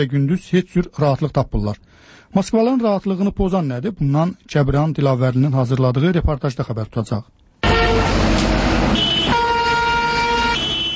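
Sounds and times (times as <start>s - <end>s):
speech: 0.0s - 7.4s
dense Moscow city traffic engines and road noise: 4.4s - 10.9s
car horns blaring in Moscow city traffic: 7.6s - 10.9s.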